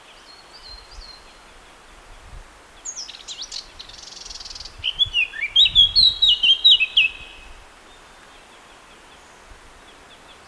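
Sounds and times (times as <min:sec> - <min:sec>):
Eurasian blackcap Sylvia atricapilla singing: 0:03.0 - 0:07.5.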